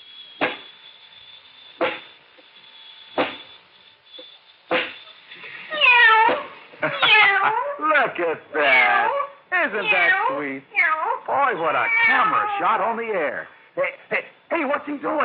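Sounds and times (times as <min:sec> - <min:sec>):
kitten meowing: 0:05.7 - 0:07.6, 0:08.6 - 0:12.7
speech: 0:08.2 - 0:15.2.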